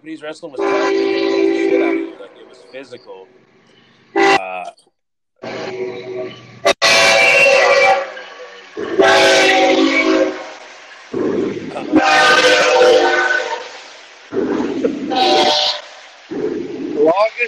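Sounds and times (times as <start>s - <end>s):
speech: 0.0s - 3.5s, 4.4s - 6.7s, 17.0s - 17.4s
long train rumbling past: 0.0s - 4.6s, 5.4s - 17.4s
train horn blasts: 0.5s - 3.0s, 4.2s - 4.6s, 5.4s - 16.3s.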